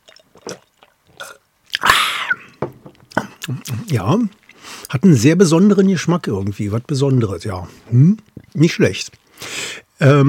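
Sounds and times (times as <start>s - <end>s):
person gulping sparkling wine from a large bottle: 0.0s - 5.0s, 7.6s - 9.5s
speech: 3.5s - 9.2s, 10.0s - 10.2s.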